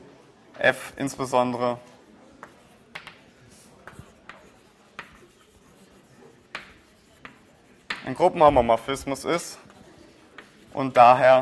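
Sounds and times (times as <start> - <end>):
speech: 0.6 - 1.9, 8.1 - 9.7, 10.8 - 11.4
writing on a board during a mathematics lecture: 2.0 - 11.0.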